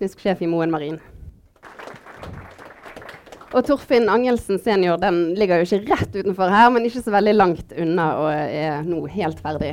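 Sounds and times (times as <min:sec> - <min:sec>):
speech: 0:00.0 - 0:01.2, 0:03.5 - 0:09.7
audience applause at a live event: 0:01.6 - 0:03.7.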